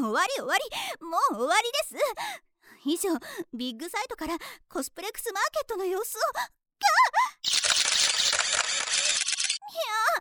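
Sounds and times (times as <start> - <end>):
speech: 0.1 - 7.6
camera shutters clicking at a cosplay event in a convention hall: 7.4 - 9.6.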